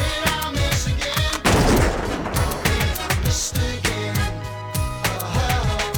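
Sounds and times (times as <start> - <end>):
bass-heavy rap beat: 0.0 - 5.9
gunfire sound effect in a rap song: 1.4 - 3.8.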